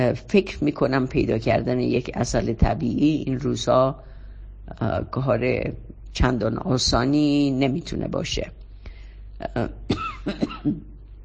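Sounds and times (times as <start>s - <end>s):
speech: 0.0s - 4.1s, 4.7s - 8.6s, 9.4s - 10.9s
person coughing from a lingering allergy caused by the air in Tehran: 9.9s - 11.0s
throat clearing: 9.9s - 11.0s.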